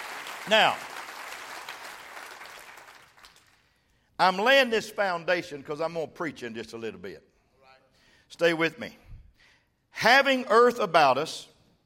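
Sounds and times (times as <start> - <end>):
church congregation clapping hands during a sermon: 0.0 - 3.8
speech: 0.4 - 0.9, 4.2 - 7.3, 8.3 - 9.0, 10.0 - 11.5.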